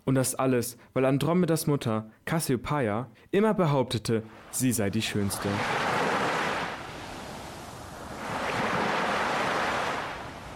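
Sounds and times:
speech: 0.1 - 5.9
ocean waves crashing against a rocky shore: 4.4 - 10.5.

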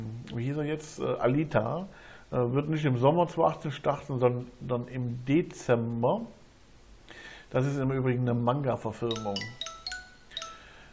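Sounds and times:
speech: 0.4 - 6.4, 7.5 - 9.6
mobile phone notification chime: 9.1 - 10.8.

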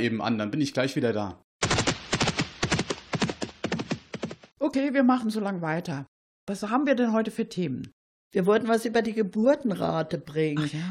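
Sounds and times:
speech: 0.0 - 1.4, 4.7 - 10.9
horse hooves clip-clopping: 1.6 - 4.5.

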